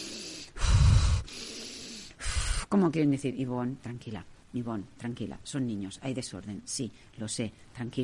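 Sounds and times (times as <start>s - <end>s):
woman imitating gasping breaths as if drowning: 0.0s - 2.7s
speech: 2.7s - 8.0s.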